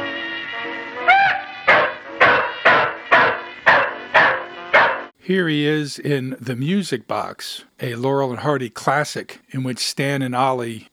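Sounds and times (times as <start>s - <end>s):
dog barking: 1.2s - 5.1s
speech: 5.3s - 10.9s.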